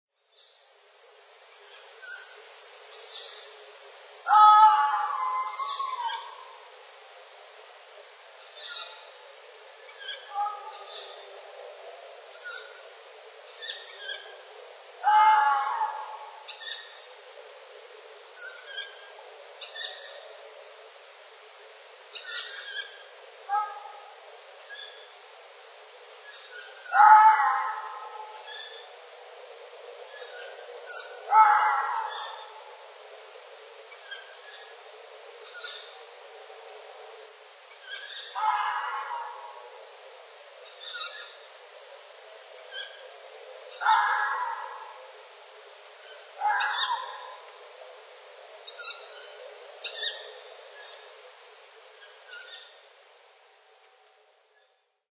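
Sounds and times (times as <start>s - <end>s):
tawny owl calling: 4.3s - 6.6s, 9.9s - 11.4s, 13.5s - 17.1s, 22.2s - 25.1s, 26.3s - 28.9s, 30.1s - 32.8s, 37.8s - 39.9s, 40.6s - 41.5s, 42.6s - 45.3s, 46.0s - 48.0s, 48.7s - 51.1s, 52.0s - 52.8s.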